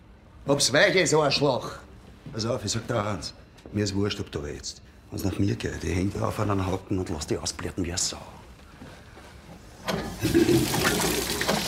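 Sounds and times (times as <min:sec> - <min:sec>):
speech: 0:00.5 - 0:08.4
running water: 0:10.2 - 0:11.6.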